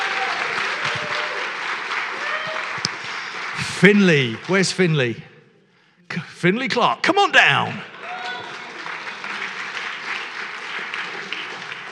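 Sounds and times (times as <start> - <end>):
audience applause: 0.0 - 5.0, 7.1 - 11.8
speech: 3.8 - 5.3, 6.4 - 7.9.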